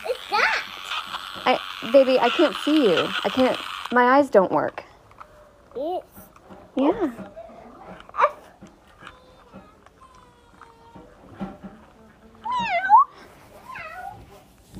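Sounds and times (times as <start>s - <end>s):
quiet rustling: 0.7s - 14.7s
speech: 1.5s - 4.8s, 6.8s - 7.4s
cat meowing: 12.4s - 14.2s.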